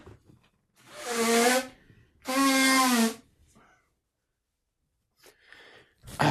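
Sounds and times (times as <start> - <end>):
honking nose blows: 0.9 - 3.3.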